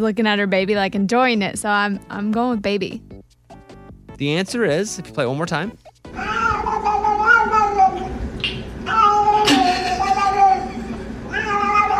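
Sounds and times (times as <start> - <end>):
speech: 0.0 - 3.1, 4.2 - 5.8
cat meowing while getting scratched on back: 6.1 - 11.9.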